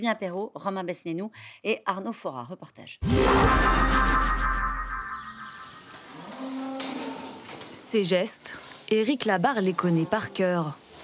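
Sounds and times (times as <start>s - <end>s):
speech: 0.0s - 4.7s, 7.9s - 10.8s
Limousin beef cattle mooing in a barn on a family farm in France: 6.1s - 7.4s.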